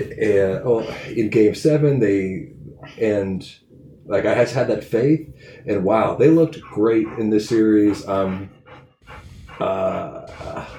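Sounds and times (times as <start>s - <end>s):
speech: 0.1s - 10.7s
excited dog barking and growling: 6.4s - 10.7s.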